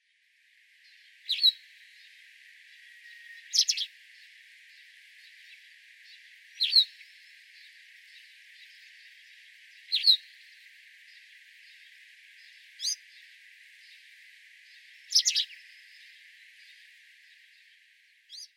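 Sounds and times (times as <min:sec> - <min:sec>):
White Wagtail calling in Utsunomiya: 0:03.5 - 0:03.9, 0:12.8 - 0:13.0, 0:15.1 - 0:15.6.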